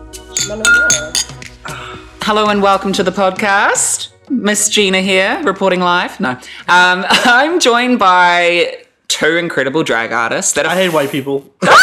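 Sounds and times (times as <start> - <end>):
speech: 0.1 - 11.8
glasses clinking together in a toast: 0.3 - 1.4.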